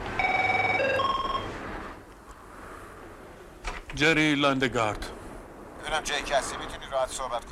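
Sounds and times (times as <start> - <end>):
telephone ringing with an electronic trill: 0.2 - 1.6
speech: 4.0 - 5.2, 5.9 - 7.5.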